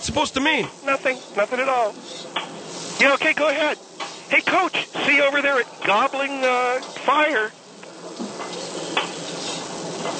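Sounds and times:
speech: 0:00.0 - 0:08.2
bean curd stir-frying in a pan: 0:00.0 - 0:10.1
utensil scraping: 0:01.0 - 0:07.3, 0:08.0 - 0:10.1.

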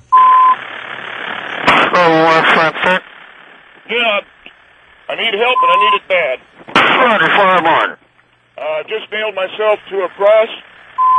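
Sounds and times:
hissy phone-line background: 0:00.0 - 0:04.2, 0:05.0 - 0:06.4, 0:09.4 - 0:11.1
single steady electronic beep on a police dispatch line: 0:00.1 - 0:00.6, 0:05.5 - 0:06.0, 0:11.0 - 0:11.1
voice talking through a narrow telephone-like line: 0:01.9 - 0:03.0, 0:03.8 - 0:04.4, 0:05.0 - 0:06.4, 0:07.0 - 0:08.0, 0:08.6 - 0:10.8
speech: 0:02.0 - 0:03.0, 0:05.2 - 0:08.0, 0:08.6 - 0:10.6.

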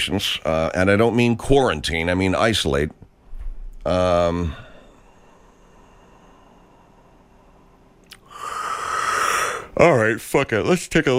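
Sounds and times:
speech: 0:00.0 - 0:03.0, 0:03.8 - 0:04.6, 0:09.8 - 0:11.1
person yawning with a brief voiced groan: 0:08.1 - 0:09.8.

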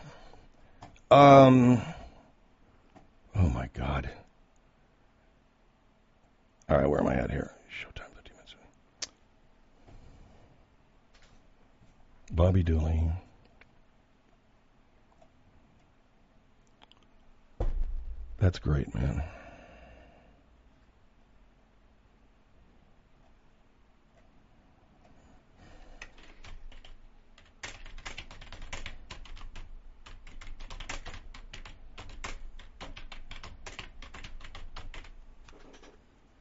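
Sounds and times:
speech: 0:01.1 - 0:01.9, 0:03.6 - 0:04.2, 0:06.7 - 0:07.9, 0:12.3 - 0:13.2, 0:18.4 - 0:19.4
keyboard typing: 0:26.0 - 0:36.0.

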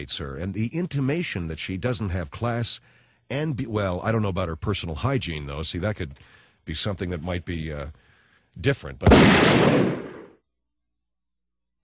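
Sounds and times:
speech: 0:00.0 - 0:10.0
gunshot sound effect: 0:09.0 - 0:10.4.

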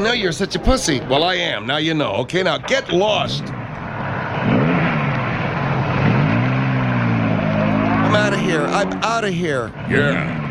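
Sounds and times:
speech: 0:00.0 - 0:03.5, 0:08.2 - 0:10.4
small car engine revving and pulling away: 0:03.2 - 0:10.4.

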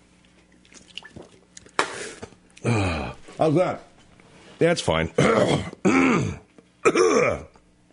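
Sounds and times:
speech: 0:02.6 - 0:03.9, 0:04.6 - 0:07.4
man clearing his throat: 0:05.2 - 0:07.6.

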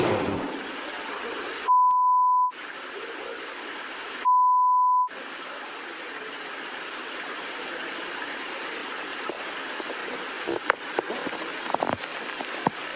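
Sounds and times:
hissing rumbling background: 0:00.0 - 0:01.9, 0:02.5 - 0:12.9
long loud single-pitched electronic beeps: 0:01.7 - 0:02.6, 0:04.2 - 0:05.1.

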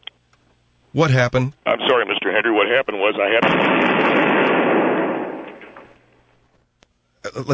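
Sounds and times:
speech: 0:00.9 - 0:04.7, 0:07.4 - 0:07.5
explosion sound effect: 0:03.4 - 0:06.0.

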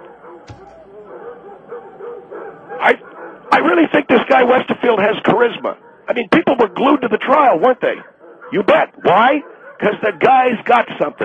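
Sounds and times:
many dogs barking, yipping and whining at a kennel: 0:00.0 - 0:03.7, 0:05.3 - 0:07.1, 0:07.9 - 0:11.2
dull thump: 0:00.5 - 0:01.1
speech: 0:02.8 - 0:11.2.

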